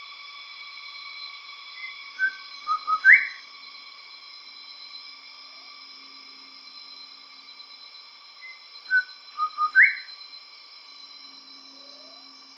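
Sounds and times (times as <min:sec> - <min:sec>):
constant tonal hum: 0:00.0 - 0:12.5
bird whistling in Papua New Guinea: 0:01.8 - 0:03.4, 0:08.4 - 0:10.1.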